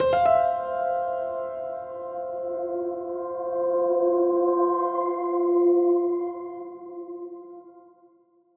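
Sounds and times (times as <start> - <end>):
piano: 0.0 - 8.2.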